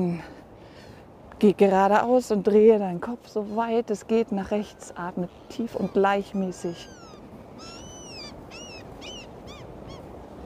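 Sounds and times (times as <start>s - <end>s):
speech: 1.4s - 7.0s
seagulls calling: 4.4s - 10.4s.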